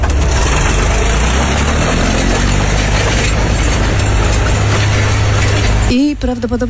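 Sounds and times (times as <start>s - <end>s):
tractor engine rumbling: 0.0s - 6.6s
speech: 6.2s - 6.6s.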